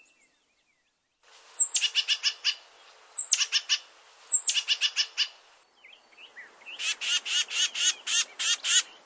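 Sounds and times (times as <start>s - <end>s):
black-crested titmouse calling: 1.6s - 5.5s, 6.7s - 9.0s.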